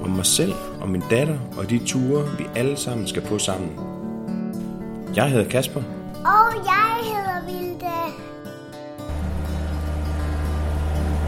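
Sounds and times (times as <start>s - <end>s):
speech: 0.2s - 4.0s, 5.1s - 8.3s
sailboat engine droning on calm water: 9.1s - 11.2s.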